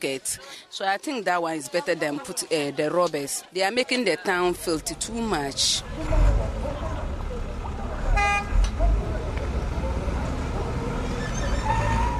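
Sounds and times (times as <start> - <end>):
speech: 0.0 - 6.4
indistinct voices: 0.0 - 11.7
waste truck engine rumble while lifting garbage at refuse dump: 4.5 - 12.1.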